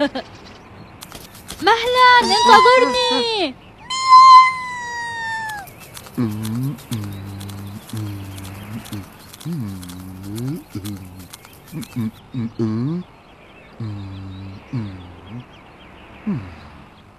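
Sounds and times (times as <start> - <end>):
speech: 0.0 - 0.4, 1.6 - 3.6, 6.2 - 7.2, 11.7 - 13.1, 13.8 - 14.0
loud drawn-out cat meow sliding downward in pitch: 2.2 - 3.2, 3.8 - 5.7
low rhythmic vocal sounds: 6.0 - 17.0.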